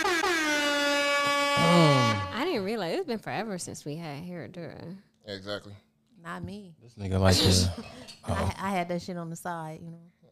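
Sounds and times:
loud sustained air horn blast with bright brassy tone: 0.0 - 2.6
speech: 2.6 - 10.2.

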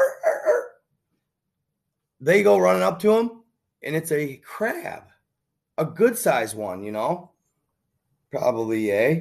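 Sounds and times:
cadaver sniffer dog yelping while searching for bones on an island: 0.0 - 0.8
speech: 2.2 - 5.1, 5.8 - 7.3, 8.3 - 9.1.

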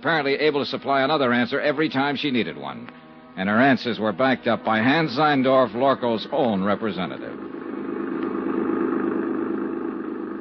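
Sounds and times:
speech: 0.0 - 7.5
car engine running: 3.4 - 10.3.

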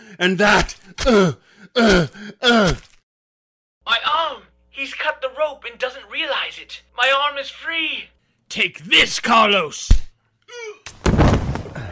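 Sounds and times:
speech: 0.1 - 2.9, 3.9 - 11.2
person crying out in pain: 1.0 - 3.0, 10.5 - 10.9.

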